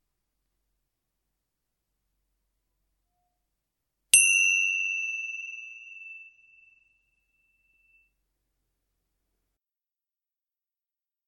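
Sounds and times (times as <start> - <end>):
meditation chime struck with a bright clear tone: 4.2 - 8.1.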